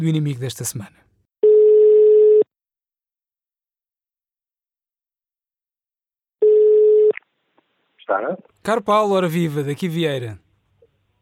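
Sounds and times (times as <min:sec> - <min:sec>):
speech: 0:00.0 - 0:01.1, 0:08.1 - 0:10.4
telephone ringback tone on an outgoing call: 0:01.4 - 0:02.5, 0:06.4 - 0:07.1.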